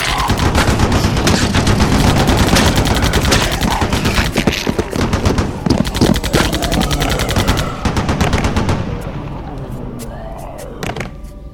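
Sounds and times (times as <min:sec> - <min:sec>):
heavy automatic gunfire in an audio-drama battle: 0:00.0 - 0:08.8.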